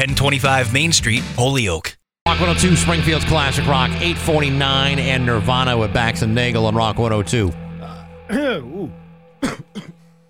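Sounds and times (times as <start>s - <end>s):
speech: 0.0s - 7.6s, 8.3s - 10.0s
person coughing after snorting a pixie stick: 7.8s - 10.1s.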